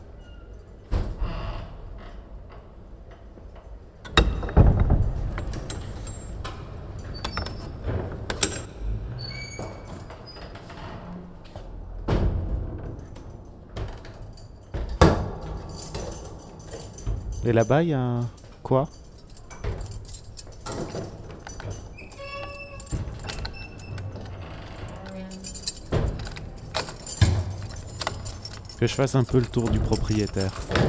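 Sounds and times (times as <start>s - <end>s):
doors being unlocked and pushed open: 0.0s - 30.8s
keys jangling: 4.0s - 8.8s, 12.9s - 30.8s
speech: 17.4s - 19.0s, 28.8s - 30.8s.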